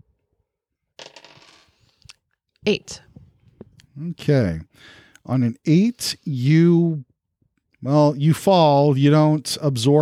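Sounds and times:
two dice rolled across a hard surface for a game: 0:01.0 - 0:02.1
speech: 0:02.6 - 0:03.0, 0:04.0 - 0:07.1, 0:07.8 - 0:10.0.

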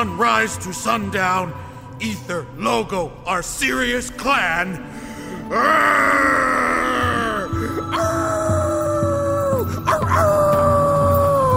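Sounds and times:
speech: 0:00.0 - 0:06.6
dog howling at the sunset: 0:05.5 - 0:11.5.

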